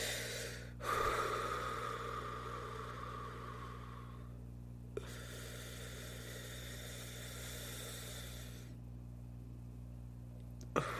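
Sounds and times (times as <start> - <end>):
slow rhythmic breathing exercise done to calm down: 0.0 - 4.4, 5.0 - 8.8, 10.7 - 10.9
low electrical hum: 0.0 - 10.9.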